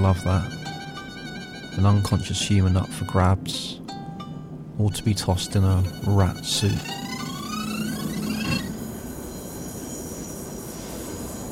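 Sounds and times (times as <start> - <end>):
speech: 0.0 - 0.6, 1.8 - 3.8, 4.8 - 7.0
tram rolling along rails: 4.6 - 11.4.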